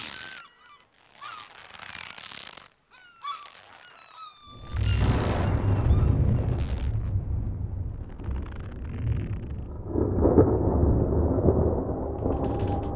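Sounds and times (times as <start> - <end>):
distant thunder rumbling: 4.6 - 12.9.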